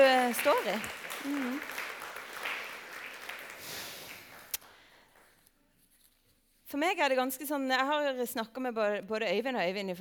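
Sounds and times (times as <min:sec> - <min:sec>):
speech: 0:00.0 - 0:01.8, 0:06.7 - 0:09.9
audience clapping: 0:00.0 - 0:05.4.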